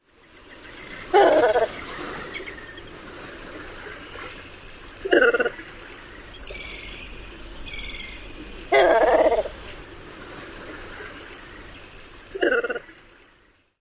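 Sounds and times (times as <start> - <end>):
adult Red-faced Cormorant calls: 0.9 - 2.6, 5.0 - 5.7, 7.6 - 9.6, 12.3 - 12.9.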